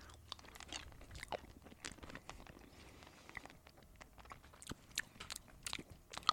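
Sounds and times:
person biting and chewing a caramel-like melty candy: 0.0 - 6.3.

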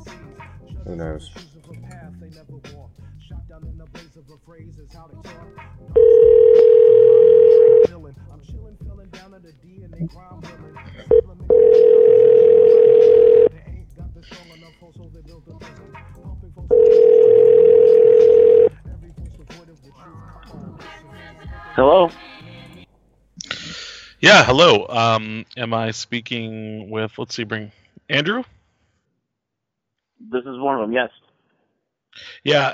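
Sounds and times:
speech: 0.9 - 1.5, 3.5 - 16.9, 24.2 - 28.6, 30.2 - 31.2, 32.2 - 32.7
telephone ringing out while calling a cell phone: 6.0 - 7.9, 11.1 - 13.5, 16.7 - 18.7.

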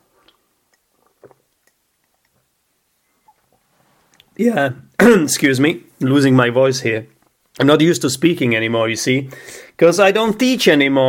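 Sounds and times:
person sipping tea from a cup: 0.0 - 2.5
speech: 4.4 - 11.0.

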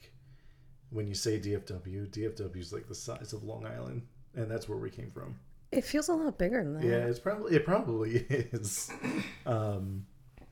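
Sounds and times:
speech: 0.9 - 10.1
woman clearing throat: 8.9 - 9.5.

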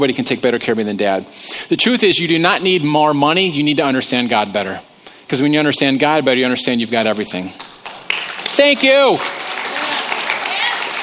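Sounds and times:
speech: 0.0 - 7.7, 8.6 - 9.4
audience clapping: 7.6 - 11.0.

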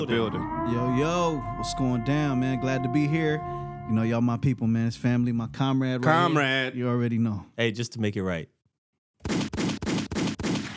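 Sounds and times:
speech: 0.0 - 8.6
gunshot sound effects: 9.2 - 10.7.

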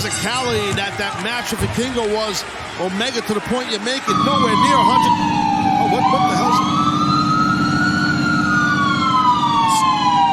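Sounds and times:
speech: 0.0 - 6.7
emergency vehicle sirens wailing: 4.1 - 10.3.

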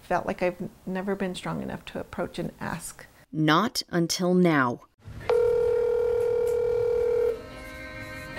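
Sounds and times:
speech: 0.1 - 4.9
telephone dial tone: 5.3 - 7.4.

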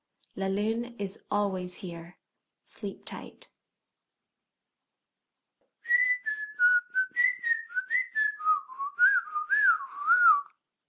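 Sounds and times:
speech: 0.4 - 3.5
person whistling a short bouncy tune: 5.8 - 10.6.

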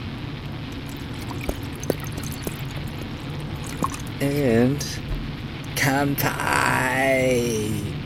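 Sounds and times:
red wine pouring into a glass: 0.6 - 4.4
speech: 4.2 - 5.1, 5.8 - 7.9.

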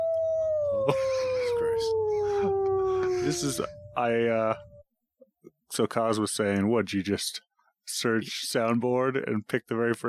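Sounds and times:
wolf howl sound effect: 0.0 - 4.8
speech: 0.8 - 1.1, 3.2 - 4.7, 5.7 - 10.0.

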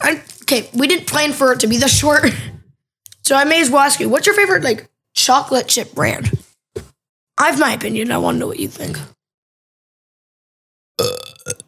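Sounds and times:
speech: 0.0 - 2.5, 3.2 - 6.4, 7.4 - 9.2
person burping: 11.0 - 11.6.

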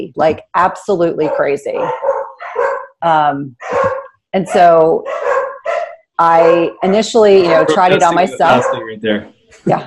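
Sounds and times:
speech: 0.0 - 5.4, 6.2 - 9.8
dogs barking with drawn-out tonal whine-like barks: 1.1 - 3.0, 3.6 - 9.0
laughter: 6.9 - 9.8.

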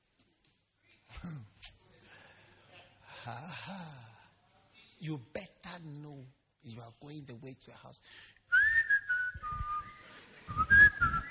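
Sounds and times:
speech: 5.0 - 8.4
person whistling a simple tune: 8.5 - 11.2.

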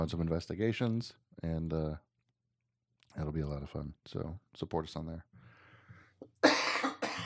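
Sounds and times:
speech: 0.0 - 2.1, 3.1 - 5.4
faint breath: 5.4 - 6.2
harsh raspy coughs: 6.4 - 7.2.

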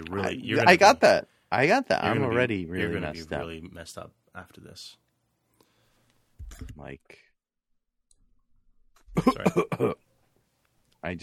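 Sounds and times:
speech: 0.1 - 5.0, 6.4 - 7.3, 9.2 - 10.0
person coughing in harsh throaty bursts: 9.2 - 10.0.

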